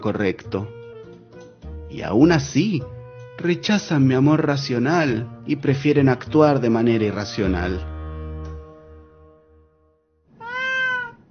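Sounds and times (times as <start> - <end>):
speech: 0.0 - 0.8, 1.9 - 7.9
black cat meowing: 10.3 - 11.2.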